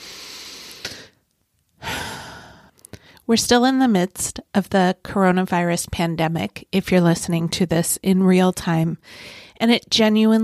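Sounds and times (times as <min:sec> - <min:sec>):
deep breath with long inhale and breathy exhale: 0:00.0 - 0:01.2, 0:01.8 - 0:03.2, 0:09.0 - 0:09.6
speech: 0:03.3 - 0:10.4.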